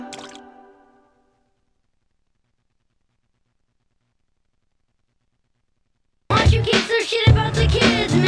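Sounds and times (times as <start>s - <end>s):
single water drip with ringing tone: 0.1s - 0.4s
speech: 7.1s - 8.1s.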